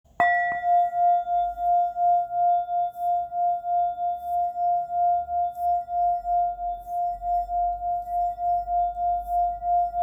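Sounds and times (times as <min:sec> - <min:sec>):
singing bowl hammered in F: 0:00.1 - 0:10.0.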